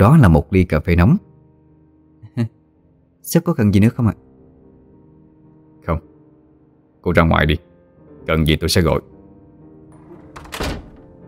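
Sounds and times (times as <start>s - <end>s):
speech: 0.0s - 1.3s, 2.4s - 2.6s, 3.2s - 4.2s, 5.8s - 6.1s, 7.0s - 9.1s
wooden door closing: 9.8s - 11.2s.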